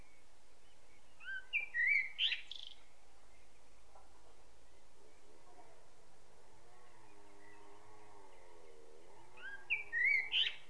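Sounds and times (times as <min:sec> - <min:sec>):
common blackbird Turdus merula singing: 0:00.0 - 0:03.9, 0:06.8 - 0:10.6.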